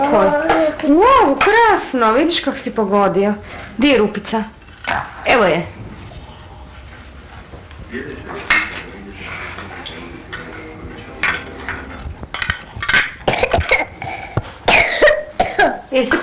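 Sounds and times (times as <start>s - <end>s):
speech: 0.1s - 5.8s, 15.9s - 16.2s
murmur of voices: 5.7s - 12.8s
young child coughing: 13.2s - 15.8s.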